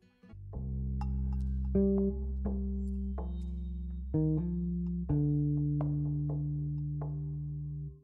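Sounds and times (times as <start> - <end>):
French music track with deep sustained synth-like tones: 0.5 - 8.0.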